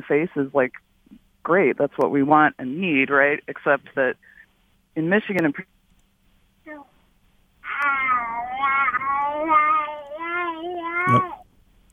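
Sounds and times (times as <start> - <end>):
speech: 0.0 - 0.9, 1.5 - 4.3, 5.0 - 5.7, 11.1 - 11.4
young child wavering whiny vocalization: 7.7 - 11.4.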